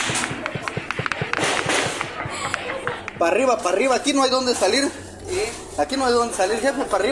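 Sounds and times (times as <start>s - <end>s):
rapid irregular gunshots during an armed clash: 0.0s - 3.5s
rough noisy background: 0.0s - 7.1s
speech: 3.2s - 7.1s.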